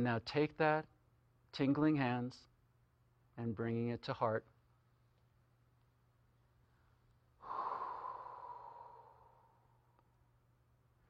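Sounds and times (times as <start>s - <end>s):
speech: 0.0s - 0.9s, 1.5s - 2.5s, 3.4s - 4.5s
long breathy exhale into cupped hands: 7.4s - 10.0s.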